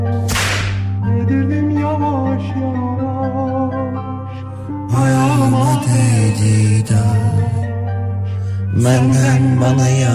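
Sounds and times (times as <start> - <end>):
music with droning tones: 0.0 - 10.1
whip crack: 0.2 - 1.0
speech: 8.8 - 10.1.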